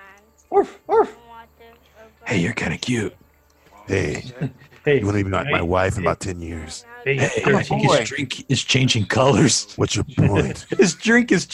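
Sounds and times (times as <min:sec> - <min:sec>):
faint tonal background: 0:00.0 - 0:11.5
person imitating a barking dog: 0:00.5 - 0:01.2, 0:05.5 - 0:06.1, 0:07.2 - 0:08.0
speech: 0:00.5 - 0:01.2, 0:02.3 - 0:03.2, 0:03.9 - 0:11.5
laughter: 0:03.9 - 0:06.2, 0:07.1 - 0:08.3, 0:09.2 - 0:11.5.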